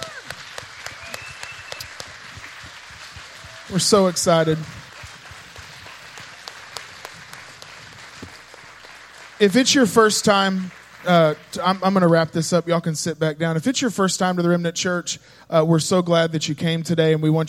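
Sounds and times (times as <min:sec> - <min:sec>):
audience applauding in a roomy space: 0:00.0 - 0:12.3
speech: 0:03.7 - 0:04.8, 0:09.4 - 0:17.4.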